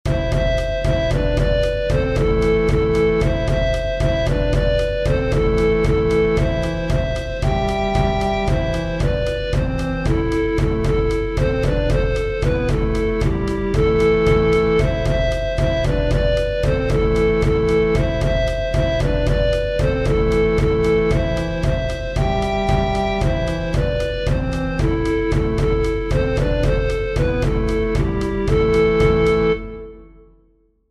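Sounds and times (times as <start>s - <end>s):
offbeat drums: 0.1s - 29.7s
bass: 0.1s - 30.1s.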